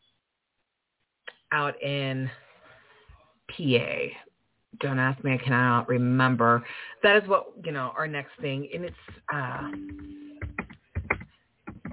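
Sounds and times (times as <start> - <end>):
speech: 1.5 - 2.4, 3.6 - 10.2
typing on a computer keyboard: 9.7 - 11.9.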